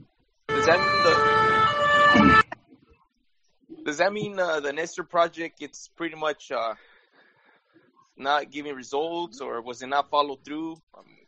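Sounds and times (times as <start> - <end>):
emergency vehicle siren wailing: 0.5 - 2.6
speech: 0.7 - 1.3, 3.9 - 6.9, 8.2 - 11.2.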